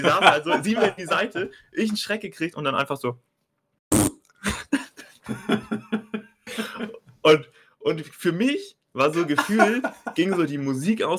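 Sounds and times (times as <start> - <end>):
laughter: 0.0 - 1.7, 4.5 - 7.0, 9.1 - 10.6
speech: 0.0 - 3.3, 5.3 - 5.9, 6.6 - 11.1
voice imitating a loud fart: 3.9 - 4.2.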